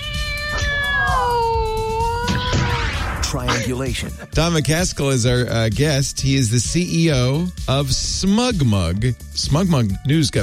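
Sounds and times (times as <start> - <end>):
cat meowing: 0.0 - 3.0
speech: 3.6 - 10.4.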